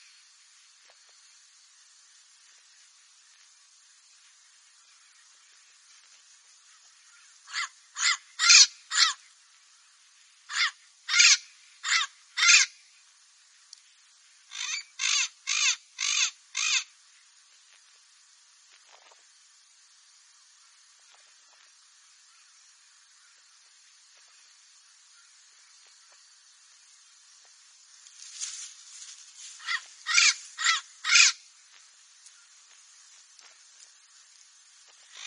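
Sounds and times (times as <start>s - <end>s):
papagaio-verdadeiro parrot singing: 7.5s - 9.1s, 10.5s - 12.7s, 14.5s - 16.9s, 29.6s - 31.3s.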